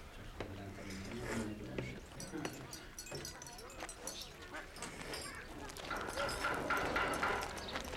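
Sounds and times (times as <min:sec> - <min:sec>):
busy outdoor background: 0:00.0 - 0:07.9
faint indistinct voices: 0:00.0 - 0:07.9
donkey hooves clip-clopping: 0:01.8 - 0:07.9.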